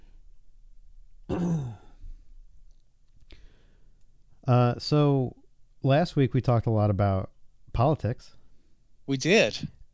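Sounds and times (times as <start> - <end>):
short gravelly throat clearing: 1.3 - 2.0
speech: 4.5 - 8.4, 9.1 - 9.9.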